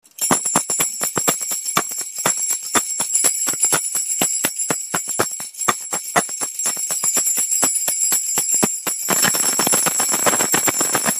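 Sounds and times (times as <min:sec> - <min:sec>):
jingle stick bells: 0:00.0 - 0:11.1.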